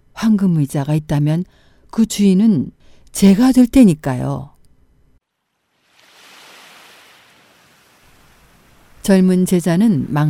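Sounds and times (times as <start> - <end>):
speech: 0.2 - 4.5, 9.0 - 10.2
rushing river water: 5.4 - 9.1.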